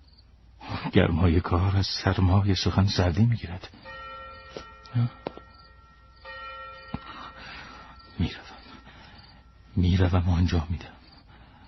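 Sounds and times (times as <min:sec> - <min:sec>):
speech: 0:00.9 - 0:04.0, 0:04.9 - 0:05.2, 0:08.2 - 0:08.5, 0:09.8 - 0:11.0
deep funeral bell tolling slowly: 0:03.8 - 0:10.8.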